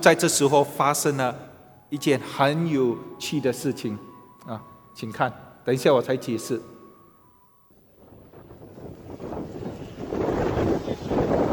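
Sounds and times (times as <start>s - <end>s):
speech: 0.0s - 6.7s
wind blowing across a desert: 7.7s - 11.5s.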